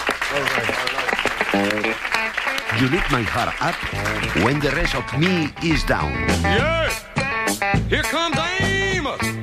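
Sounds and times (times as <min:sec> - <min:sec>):
audience applause at a comedy show: 0:00.0 - 0:05.6
speech: 0:00.3 - 0:09.3.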